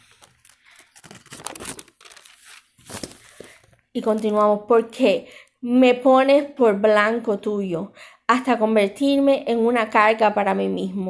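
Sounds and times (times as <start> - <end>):
thin Bible pages being peeled apart and flipped: 0.0 - 4.4
speech: 4.0 - 11.0.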